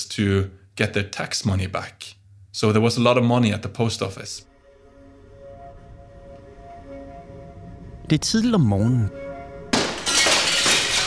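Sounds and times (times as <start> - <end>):
speech: 0.0 - 4.5, 8.1 - 9.2
window glass being smashed and shattering: 9.7 - 11.0
glass shards tinkling and crunching as they scatter and fall: 9.8 - 11.0.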